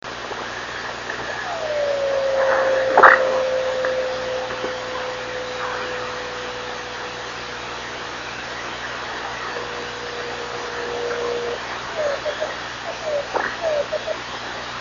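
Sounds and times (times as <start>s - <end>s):
radio signal on 26560 kHz: 0.1s - 14.3s.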